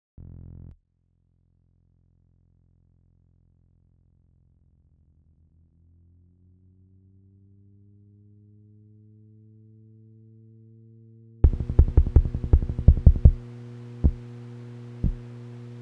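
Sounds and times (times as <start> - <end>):
clattering hard drive spinning up, idling and parking: 11.4 - 15.8.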